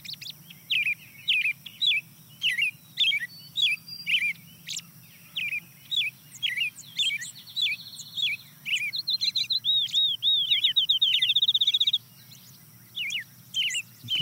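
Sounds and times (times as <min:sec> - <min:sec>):
busy chorus of other birdsong: 0:00.0 - 0:14.2
field sparrow trill: 0:00.0 - 0:14.2
faint low hum: 0:12.1 - 0:14.2.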